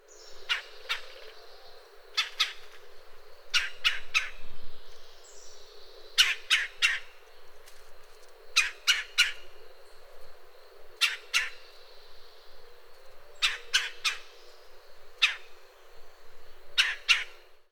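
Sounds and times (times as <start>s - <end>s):
red-bellied woodpecker cha calls: 0.2s - 2.9s, 3.5s - 4.4s, 5.0s - 7.3s, 8.5s - 9.6s, 10.9s - 15.7s, 16.8s - 17.5s.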